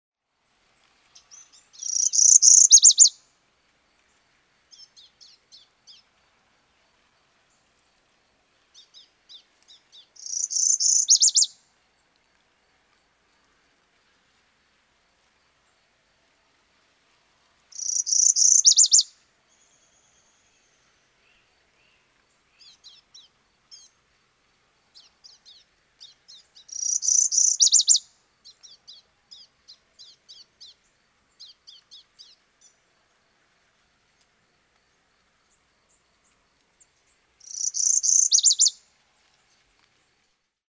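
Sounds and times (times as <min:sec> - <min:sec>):
Northern Parula singing: 0:01.2 - 0:03.3, 0:04.0 - 0:06.1, 0:08.7 - 0:12.1, 0:17.7 - 0:24.0, 0:25.0 - 0:32.8, 0:35.5 - 0:39.6.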